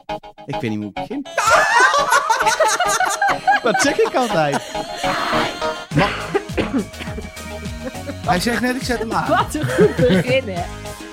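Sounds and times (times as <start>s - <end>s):
speech: 0.5s - 7.0s, 8.3s - 10.8s
laughter: 1.3s - 10.6s
raspy throat clearing: 5.9s - 8.2s
person coughing: 5.9s - 8.3s, 9.6s - 10.4s.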